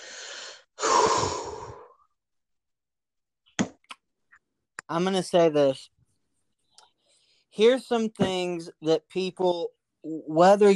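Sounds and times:
deep breath: 0:00.0 - 0:02.1
speech: 0:04.9 - 0:06.0, 0:07.6 - 0:10.7.

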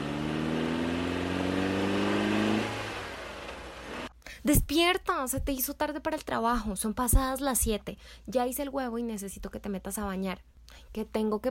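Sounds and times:
car engine accelerating as the driver presses the accelerator: 0:00.0 - 0:04.1
speech: 0:04.4 - 0:11.4.

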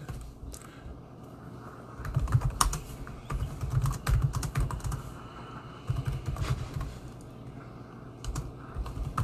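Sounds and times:
typing on a computer keyboard: 0:02.0 - 0:05.1, 0:05.8 - 0:06.9, 0:08.2 - 0:09.2.

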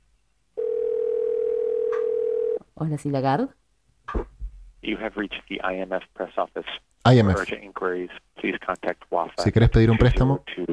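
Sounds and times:
telephone dial tone placing a call: 0:00.6 - 0:02.6
speech: 0:02.8 - 0:10.7.

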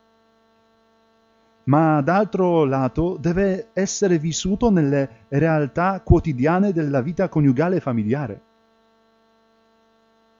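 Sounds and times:
refrigerator humming: 0:01.7 - 0:08.4
speech: 0:01.7 - 0:08.5.

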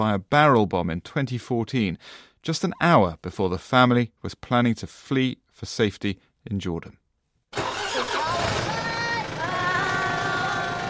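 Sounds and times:
speech: 0:00.0 - 0:07.0
school bus engine idling in the suburbs of Amman: 0:07.6 - 0:10.8
children's voices chattering: 0:07.9 - 0:10.8.

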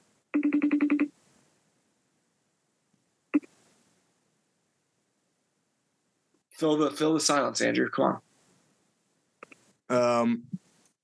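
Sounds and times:
phone ringing with rapid pulsed tones during an outgoing call: 0:00.3 - 0:01.1
speech: 0:06.6 - 0:08.3, 0:09.9 - 0:11.0.

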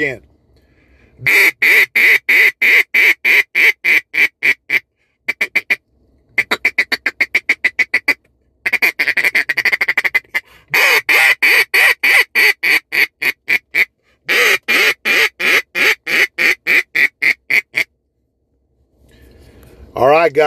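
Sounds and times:
speech: 0:00.0 - 0:00.3, 0:01.2 - 0:02.2, 0:20.3 - 0:20.4
duck call blown, rattling rapid quacks: 0:01.2 - 0:05.8, 0:06.4 - 0:17.9.

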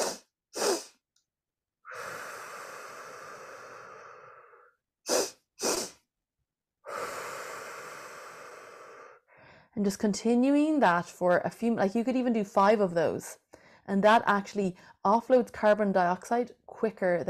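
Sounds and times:
quick sharp nasal inhales of physiological sigh breathing: 0:00.0 - 0:01.0, 0:01.9 - 0:06.0, 0:06.8 - 0:09.7
long slow exhale of physiological sigh breathing: 0:01.9 - 0:06.0, 0:06.8 - 0:09.7
speech: 0:09.8 - 0:17.2.

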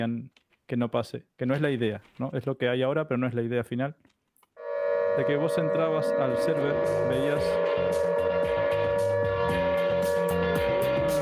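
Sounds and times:
speech: 0:00.0 - 0:04.2, 0:05.2 - 0:08.8
video game raid alarm siren: 0:04.6 - 0:11.2
rhythmic low thumping: 0:04.8 - 0:11.2.

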